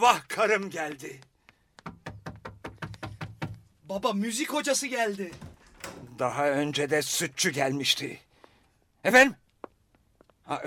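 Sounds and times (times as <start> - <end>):
speech: 0.0 - 1.3, 3.9 - 8.3, 9.0 - 9.4, 10.5 - 10.6
firm knocking on a door: 1.8 - 3.7.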